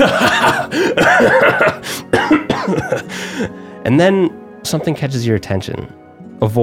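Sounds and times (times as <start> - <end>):
man coughing: 0.0 - 3.2
speech: 3.8 - 6.6.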